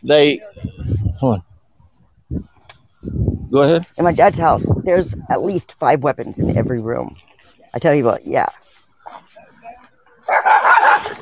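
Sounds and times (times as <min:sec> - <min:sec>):
speech: 0:00.0 - 0:01.5, 0:02.3 - 0:09.5, 0:10.3 - 0:11.2
several dogs barking: 0:10.2 - 0:11.2.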